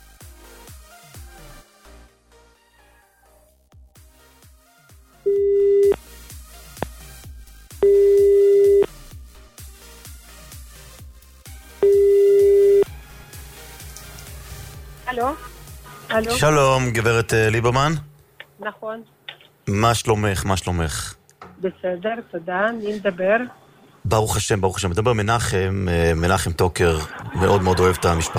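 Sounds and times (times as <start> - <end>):
telephone ringback tones from a call being dialed on air: 5.3 - 6.0, 7.8 - 8.9, 11.8 - 12.9
speech: 16.2 - 28.3
laughter: 26.8 - 28.3.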